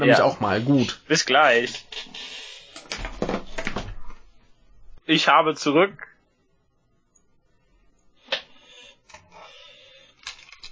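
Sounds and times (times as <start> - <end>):
speech: 0.0 - 3.1, 5.1 - 6.1
chair creaking and squeaking: 1.6 - 4.2.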